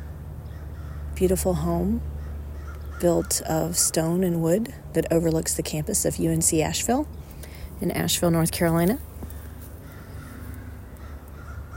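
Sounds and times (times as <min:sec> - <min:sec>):
steady noisy outdoor background noise: 0:00.0 - 0:11.7
birds with crow-like caws on a hillside in Asheville, North Carolina, in spring: 0:00.4 - 0:01.2, 0:02.1 - 0:03.8, 0:09.2 - 0:11.7
speech: 0:01.2 - 0:02.2, 0:03.0 - 0:07.2, 0:07.8 - 0:09.1.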